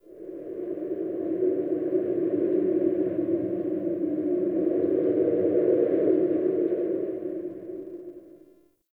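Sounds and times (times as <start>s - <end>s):
wind howling: 0.0s - 8.5s.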